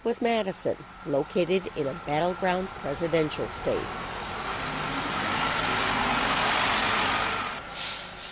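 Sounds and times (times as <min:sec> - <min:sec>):
speech: 0:00.0 - 0:04.2
tour bus engine idling: 0:00.4 - 0:08.2
bus air brake releasing: 0:07.7 - 0:08.2.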